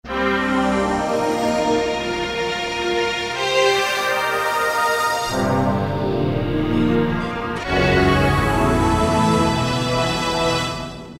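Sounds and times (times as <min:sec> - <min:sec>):
suspense music on Kawai K1m synthesizer: 0:00.2 - 0:11.1.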